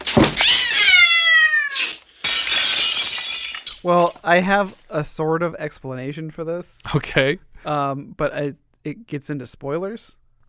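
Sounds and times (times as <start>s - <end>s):
cat harsh sustained hiss: 0.2s - 2.1s
speech: 3.8s - 10.2s.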